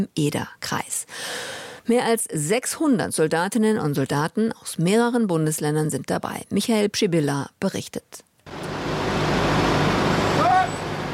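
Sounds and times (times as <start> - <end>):
speech: 0.0 - 8.3
heavy military trucks rolling past in a convoy: 8.5 - 11.1
high truck brake squeal: 8.7 - 11.1.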